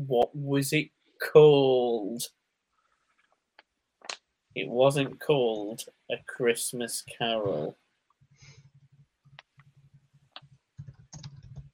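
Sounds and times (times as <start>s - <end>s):
speech: 0.1s - 2.4s, 4.6s - 7.8s
typing on a computer keyboard into a web search engine: 9.6s - 11.7s.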